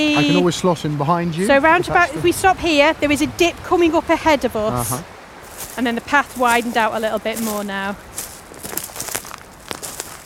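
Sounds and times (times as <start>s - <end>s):
speech: 0.0s - 5.2s, 5.8s - 8.1s
footsteps crunching along a narrow path in a V-shaped river valley: 5.4s - 10.2s.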